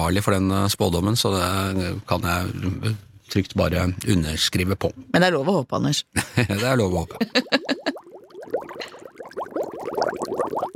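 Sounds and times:
speech: 0:00.0 - 0:07.7
laughter: 0:06.2 - 0:08.0
thick boiling liquid bubbling: 0:07.2 - 0:10.7.

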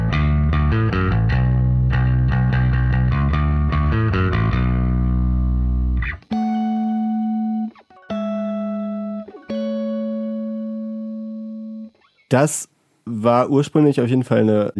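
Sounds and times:
bass guitar played through a small distortion pedal: 0:00.0 - 0:11.9
speech: 0:12.3 - 0:14.7.

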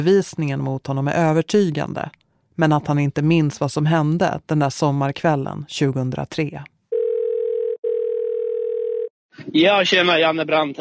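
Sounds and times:
speech: 0:00.0 - 0:06.7, 0:09.4 - 0:10.7
telephone line tone before a call: 0:06.9 - 0:09.1.

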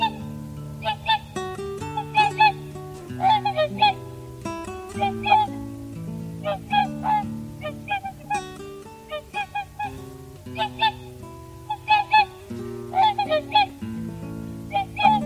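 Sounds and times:
whooper swans trumpeting: 0:00.0 - 0:15.2.

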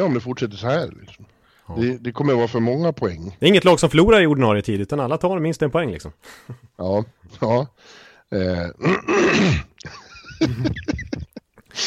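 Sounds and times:
speech: 0:00.0 - 0:11.8
loud raspy throat clearing: 0:08.8 - 0:09.8
laughter: 0:09.8 - 0:11.8.

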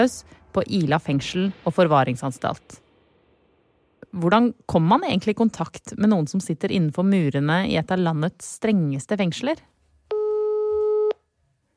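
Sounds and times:
speech: 0:00.0 - 0:02.8, 0:04.1 - 0:09.7
telephone ringback tone of an outgoing call: 0:10.1 - 0:11.2.

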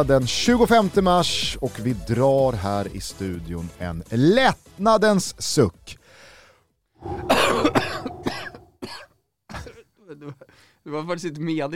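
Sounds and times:
speech: 0:00.0 - 0:06.3, 0:07.0 - 0:08.1, 0:10.1 - 0:11.7
person in a harsh coughing fit: 0:07.0 - 0:09.0
throat clearing: 0:07.2 - 0:08.6.

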